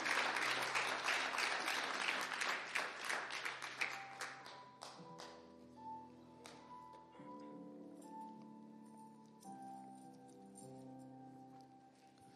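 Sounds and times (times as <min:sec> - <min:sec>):
church audience applauding: 0:00.0 - 0:05.3.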